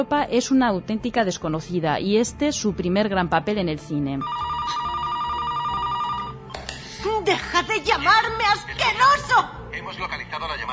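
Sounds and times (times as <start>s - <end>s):
speech: 0.0s - 4.9s, 7.2s - 10.7s
telephone ringing in a warbling trill: 4.2s - 6.5s.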